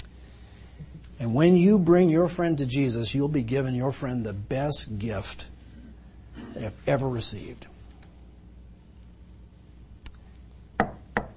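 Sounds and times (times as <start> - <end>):
speech: 1.2 - 5.5, 6.6 - 7.7
knocking on a hollow wooden surface: 10.8 - 11.3.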